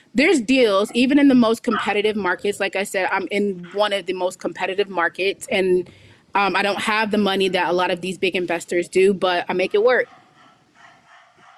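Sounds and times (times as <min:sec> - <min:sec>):
constant hiss: 0:00.0 - 0:11.5
speech: 0:00.1 - 0:10.2
neighbor's dog barking faintly: 0:01.7 - 0:02.1, 0:09.6 - 0:11.5.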